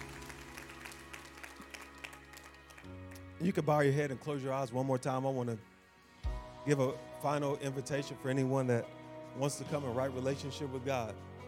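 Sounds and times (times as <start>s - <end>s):
audience clapping in praise to the Lord: 0.0s - 3.4s
speech: 3.4s - 5.7s, 6.6s - 11.3s.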